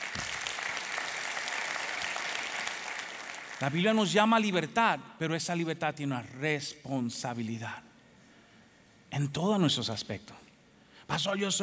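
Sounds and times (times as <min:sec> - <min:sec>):
audience applauding: 0:00.0 - 0:04.0
speech: 0:03.6 - 0:07.9, 0:09.1 - 0:10.4, 0:11.1 - 0:11.6.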